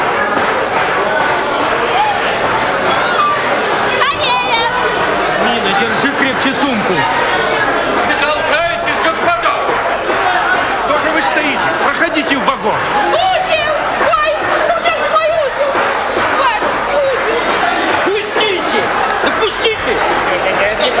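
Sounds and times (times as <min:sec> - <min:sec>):
dense crowd murmuring and calling out on a train platform: 0:00.0 - 0:20.9.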